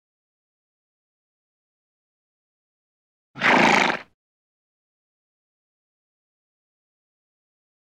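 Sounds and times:
horse vocalizing: 3.4s - 4.1s.

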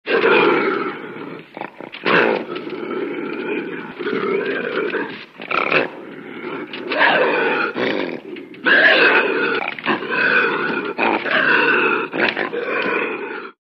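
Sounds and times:
lynx voice: 0.3s - 13.3s.

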